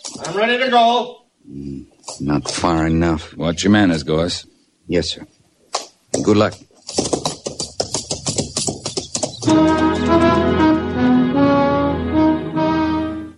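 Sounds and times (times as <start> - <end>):
speech: 0.2 - 5.4, 6.2 - 7.2
coconut shells imitating galloping horse hooves: 6.1 - 9.5
loud sustained music: 9.4 - 13.3.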